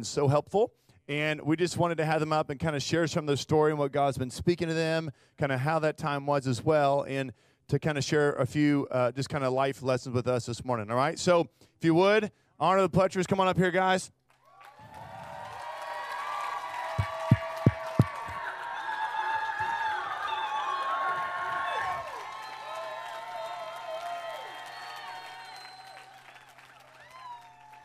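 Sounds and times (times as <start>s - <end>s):
speech: 0.0s - 14.2s
crowd applauding: 14.3s - 27.8s.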